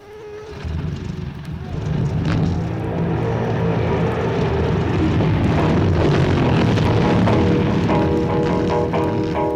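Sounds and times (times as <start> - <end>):
several race car engines starting and revving: 0.0 - 9.4.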